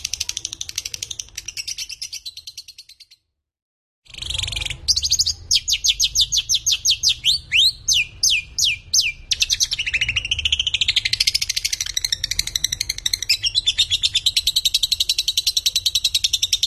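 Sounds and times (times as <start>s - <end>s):
lovebird calling with Konslet-style chattering song: 0.0s - 3.3s, 4.1s - 16.6s.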